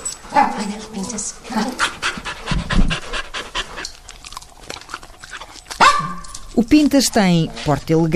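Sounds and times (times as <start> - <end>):
therapy dog panting and sniffing at the microphone: 0.0 - 8.1
speech: 0.6 - 2.0, 6.8 - 8.1
sharp yelp-like dog sound: 5.7 - 6.4.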